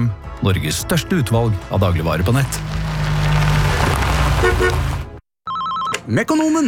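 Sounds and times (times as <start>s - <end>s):
speech: 0.1s - 2.9s, 6.1s - 6.6s
car whining loudly while cornering: 2.4s - 5.1s.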